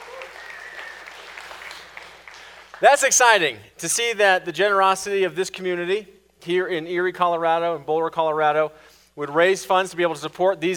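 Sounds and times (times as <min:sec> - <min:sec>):
audience applause at a community fundraising event: 0:00.0 - 0:03.0
speech: 0:02.8 - 0:10.7.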